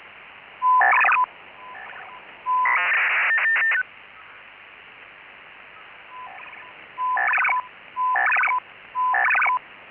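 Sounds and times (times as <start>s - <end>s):
8-FSK control sequences: 0.6s - 3.8s, 6.1s - 9.6s
Chinese military hybrid 2400 Bd BPSK modem signal: 0.6s - 3.9s, 6.1s - 9.6s.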